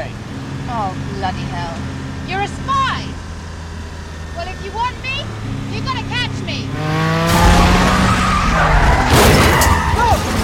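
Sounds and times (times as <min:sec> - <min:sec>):
car engines roaring: 0:00.0 - 0:10.4
speech: 0:00.7 - 0:03.3, 0:04.4 - 0:07.3
tires squealing as cars skid and swerve: 0:04.3 - 0:10.4
cars crashing into each other: 0:06.8 - 0:10.4.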